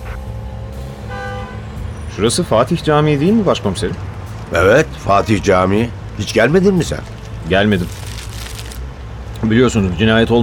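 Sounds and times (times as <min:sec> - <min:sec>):
car horns honking in slow city traffic: 0:00.0 - 0:02.2
low city traffic rumble: 0:00.0 - 0:10.4
speech: 0:02.2 - 0:08.0, 0:09.4 - 0:10.4.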